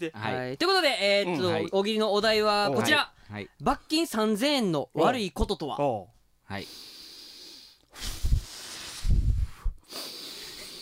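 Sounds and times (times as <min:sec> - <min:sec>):
speech: 0:00.0 - 0:07.0
person taking deep noisy breaths during a comedy game: 0:06.6 - 0:10.7.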